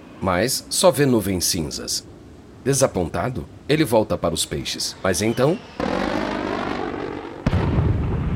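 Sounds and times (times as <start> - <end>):
speech: 0.2 - 6.1
jet airplane roaring overhead: 4.7 - 7.5
heavy boom: 5.8 - 8.3.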